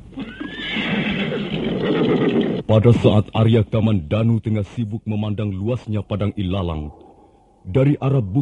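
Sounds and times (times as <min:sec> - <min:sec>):
horse whinnying: 0:00.1 - 0:02.7
speech: 0:02.7 - 0:07.0, 0:07.7 - 0:08.3.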